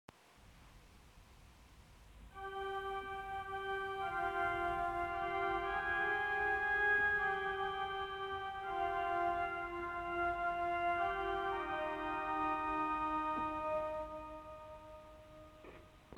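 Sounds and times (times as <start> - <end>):
pipe organ with Vox Celestis and Gambette Celeste stops: 2.4 - 16.1.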